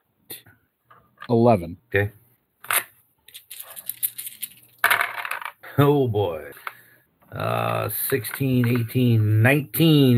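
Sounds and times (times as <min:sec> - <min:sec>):
speech: 0:01.3 - 0:02.2, 0:05.8 - 0:06.6, 0:07.3 - 0:10.1
dice clattering and rattling across a table: 0:02.6 - 0:05.6.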